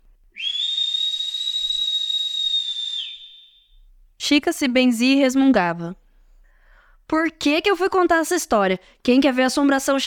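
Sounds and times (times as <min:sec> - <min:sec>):
long high whistle: 0:00.3 - 0:03.9
speech: 0:04.3 - 0:06.0, 0:07.1 - 0:10.0.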